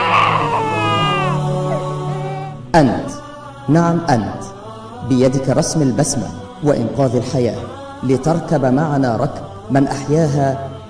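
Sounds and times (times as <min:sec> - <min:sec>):
baby crying in pain: 0:00.0 - 0:02.6
speech: 0:02.8 - 0:10.7.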